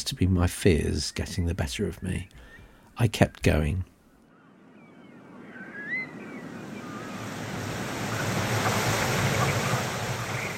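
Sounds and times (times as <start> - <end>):
speech: 0.1 - 2.4, 3.0 - 3.9
incoming tide water rushing over mud: 7.2 - 10.5.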